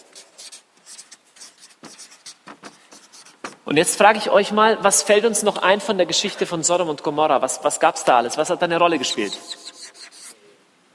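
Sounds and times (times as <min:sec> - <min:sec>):
scratchy writing strokes on a surface in a classroom lesson: 0:00.0 - 0:03.7, 0:09.3 - 0:10.4
speech: 0:03.7 - 0:09.6.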